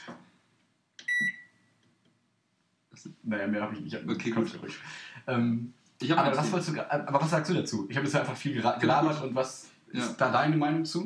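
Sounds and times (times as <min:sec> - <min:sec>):
loud sharp electronic beep from a microwave oven: 0:01.0 - 0:01.6
speech: 0:03.0 - 0:11.0.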